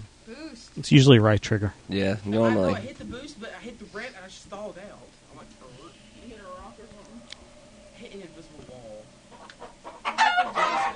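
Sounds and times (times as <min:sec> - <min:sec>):
speech: 0:00.3 - 0:05.6
chicken squawking and clucking in a video game: 0:09.3 - 0:10.9.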